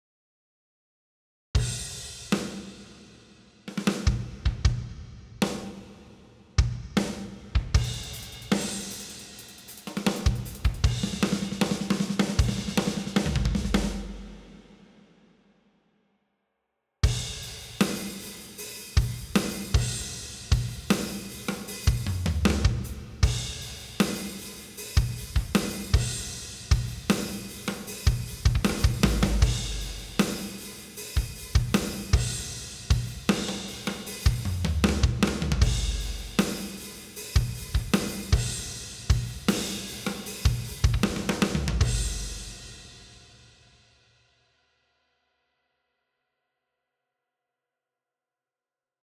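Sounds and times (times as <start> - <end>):
loud rock acoustic drums with compressor on: 1.6 - 2.9, 3.7 - 14.6, 17.0 - 43.2.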